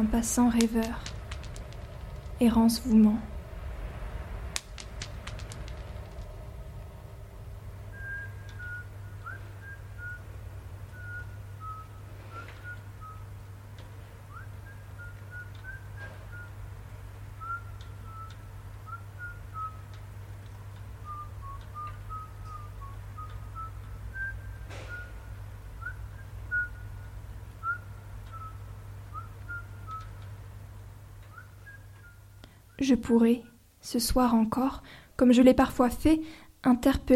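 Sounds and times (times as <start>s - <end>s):
speech: 0.0s - 1.2s, 2.4s - 3.3s, 32.8s - 37.1s
steady low city hum: 0.0s - 37.1s
person whistling a wandering melody echoing through the city: 7.9s - 10.3s, 10.9s - 13.3s, 14.3s - 16.6s, 17.4s - 19.9s, 21.0s - 30.1s, 31.3s - 32.4s.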